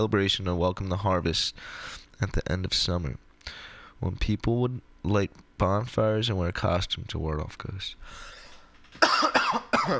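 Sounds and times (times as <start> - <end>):
speech: 0.0 - 9.9
harsh raspy coughs: 9.0 - 9.9.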